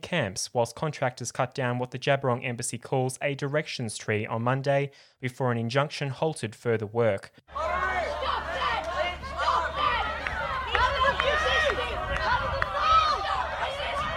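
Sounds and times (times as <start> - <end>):
speech: 0.1 - 7.9
crowd of protesters chatter and calls during removal by police: 7.5 - 14.1.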